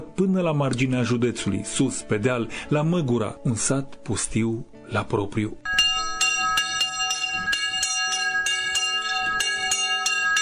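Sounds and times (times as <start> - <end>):
speech: 0.2 - 5.8
church bell ringing: 5.7 - 10.3.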